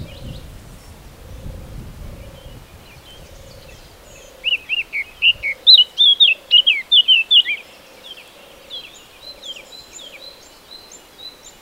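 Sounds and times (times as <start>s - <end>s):
Eurasian blackcap Sylvia atricapilla warbling song: 2.2s - 10.4s.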